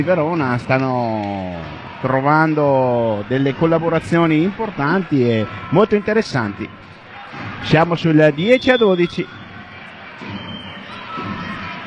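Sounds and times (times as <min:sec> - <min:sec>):
speech: 0:00.0 - 0:09.4
small crowd of volleyball fans cheering and shouting in an indoor arena: 0:00.0 - 0:11.8.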